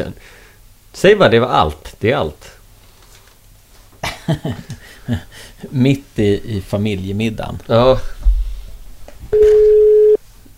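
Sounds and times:
speech: 0.0 - 2.6, 4.3 - 8.3, 9.3 - 9.8
telephone ringback tone while calling someone: 9.4 - 10.2.

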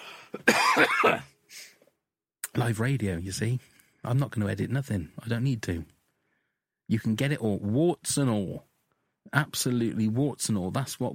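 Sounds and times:
raspy hacking cough: 0.3 - 1.3
speech: 0.3 - 1.3, 2.6 - 6.0, 6.9 - 11.1.

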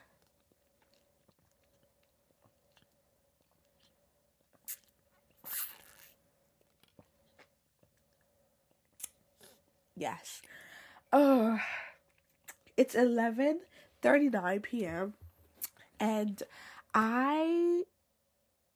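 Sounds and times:
sipping water from a cup: 0.1 - 6.2
wet mouth clicks and smacking: 0.2 - 6.2, 8.8 - 9.6, 12.1 - 12.7, 15.6 - 15.8
slurping swallow: 4.6 - 6.2
speech: 10.0 - 10.5, 11.1 - 11.8, 12.8 - 15.2, 16.0 - 17.9.

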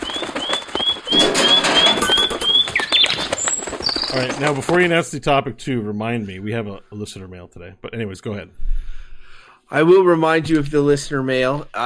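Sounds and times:
thin rising whistles of a dove in flight: 0.0 - 4.2
bird wings fluttering on takeoff: 0.0 - 5.0
speech: 4.2 - 8.7, 9.7 - 11.8.

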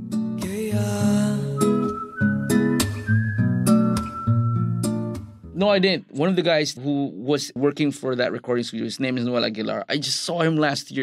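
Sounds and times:
whistled melody in a recorded song: 1.0 - 5.3
speech: 5.6 - 11.0.

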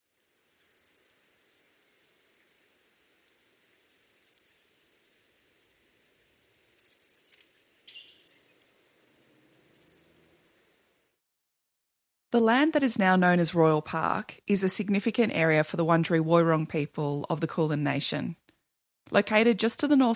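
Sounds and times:
Superb Fairywren calls in an urban park in Melbourne, Australia: 0.4 - 1.2, 2.1 - 2.8, 3.9 - 4.5, 6.6 - 8.5, 9.5 - 10.2
speech: 12.4 - 18.4, 19.1 - 20.1.

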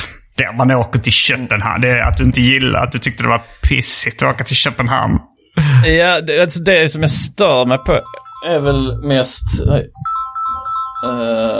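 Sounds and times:
speech: 0.4 - 10.1, 11.0 - 11.5
mobile phone ringing: 7.5 - 11.5.

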